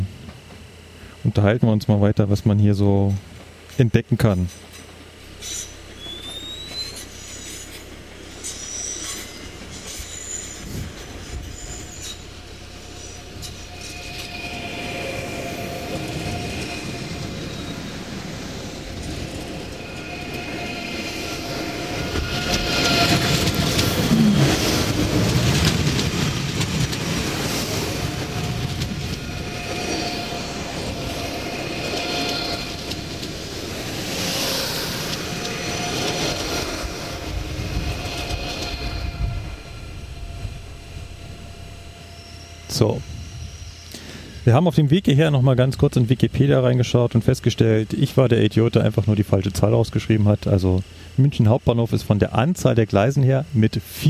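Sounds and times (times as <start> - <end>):
high thin whine of ICE high-speed train: 0.0 - 54.0
speech: 1.2 - 4.7, 44.5 - 54.0
ICE high-speed train passing by: 4.3 - 54.0.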